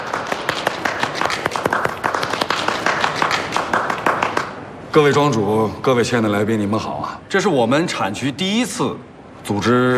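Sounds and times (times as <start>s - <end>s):
audience of winery owners applauding at a wine-region salon: 0.0s - 4.6s
speech: 5.0s - 9.9s.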